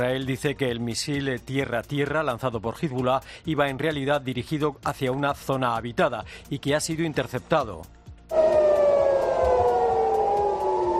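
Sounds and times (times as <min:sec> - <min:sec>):
speech: 0:00.0 - 0:08.6
air raid siren wailing: 0:08.3 - 0:10.9.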